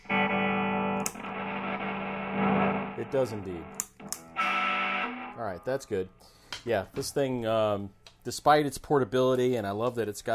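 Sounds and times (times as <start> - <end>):
electric guitar chord through a battery-powered MXR distortion pedal: 0.0 - 5.7
speech: 3.0 - 3.8, 5.4 - 10.3.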